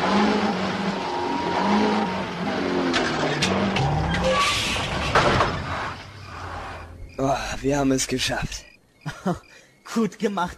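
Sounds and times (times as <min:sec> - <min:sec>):
car engine revving and accelerating while people push the car: 0:00.0 - 0:07.1
speech: 0:07.6 - 0:10.5.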